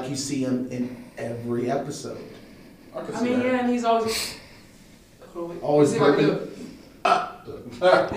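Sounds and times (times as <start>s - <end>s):
speech: 0.1s - 4.4s, 5.3s - 8.1s
voice imitating a burp: 7.0s - 7.6s.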